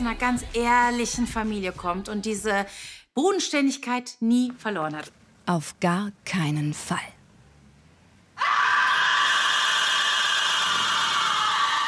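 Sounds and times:
speech: 0.0 - 7.2
woman screaming on finding a corpse in a TV crime drama: 8.4 - 11.8.

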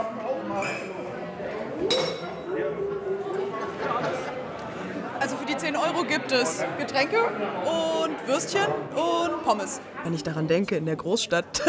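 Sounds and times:
murmur of people chatting: 0.0 - 11.6
glasses clinking in a toast: 1.9 - 2.5
speech: 5.7 - 11.6.

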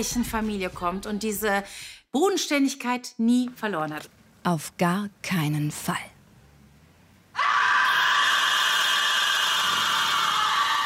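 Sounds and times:
speech: 0.0 - 6.1
woman screaming in a TV crime drama scene after finding a dead body: 7.4 - 10.8.

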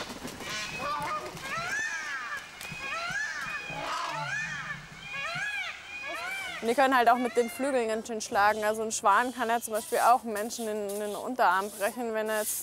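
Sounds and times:
flock of geese honking and cackling: 0.4 - 7.7
speech: 6.6 - 12.6.

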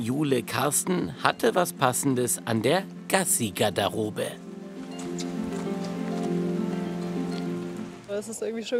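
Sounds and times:
speech: 0.0 - 4.4, 8.2 - 8.7
rain falling outdoors in Wuppertal Germany: 4.6 - 8.4.

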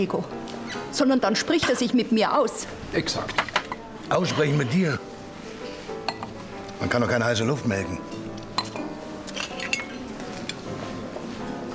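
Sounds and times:
speech: 0.0 - 3.5, 4.1 - 5.1, 6.8 - 8.1
glasses clinking in a toast: 3.4 - 5.0, 6.0 - 6.4, 7.9 - 10.7.

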